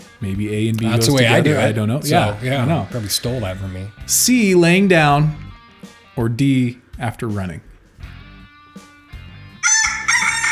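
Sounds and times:
speech: 0.2 - 5.4, 6.2 - 7.7
laughter: 0.2 - 5.5
rooster crowing: 9.6 - 10.5.

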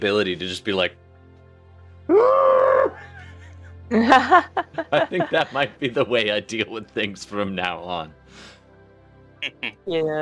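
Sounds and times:
speech: 0.0 - 1.0, 2.1 - 3.0, 3.9 - 8.5, 9.4 - 10.2
person screaming into a shell: 2.1 - 3.0
laughter: 3.0 - 6.8.

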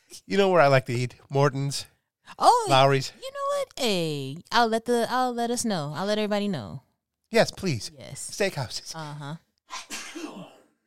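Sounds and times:
speech: 0.2 - 10.2
person sneezing: 9.7 - 10.7.

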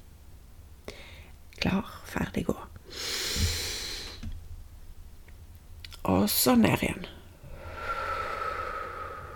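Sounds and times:
slow breath in through nose and out through mouth: 0.9 - 1.4, 2.9 - 4.3, 7.4 - 9.3
speech: 1.6 - 3.5, 6.1 - 7.2.

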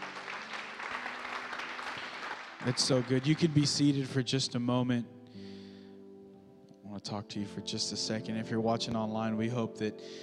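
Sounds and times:
church congregation clapping hands during a service: 0.0 - 4.3
speech: 2.6 - 5.2, 7.0 - 10.2.

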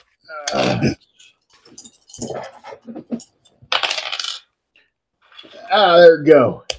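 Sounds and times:
speech: 0.3 - 1.1, 5.7 - 6.6
dice clattering across a hard tabletop: 2.2 - 4.5.

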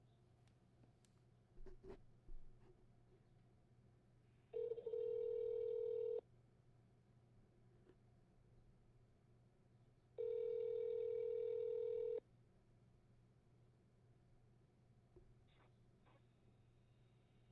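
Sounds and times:
long steady phone ringing tone on the line: 4.6 - 6.2, 10.2 - 12.2.

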